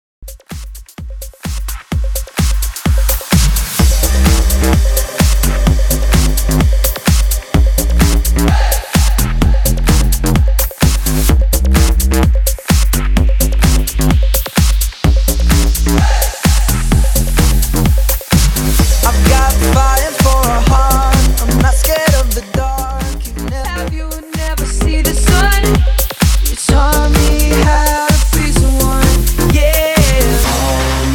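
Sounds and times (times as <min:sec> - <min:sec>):
bass house music: 0:00.2 - 0:31.1.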